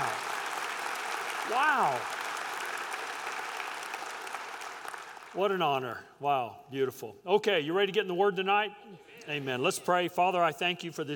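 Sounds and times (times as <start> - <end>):
audience applause at an evening church service: 0.0 - 5.4
speech: 1.5 - 2.2, 5.4 - 11.1.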